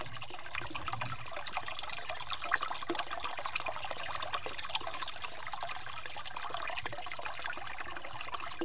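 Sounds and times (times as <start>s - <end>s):
water trickling at a natural spring: 0.0s - 8.6s.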